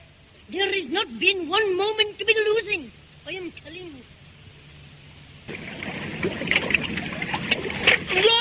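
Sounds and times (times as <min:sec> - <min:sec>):
speech: 0:00.5 - 0:04.2
small boat splashing and lapping through water: 0:05.5 - 0:08.3.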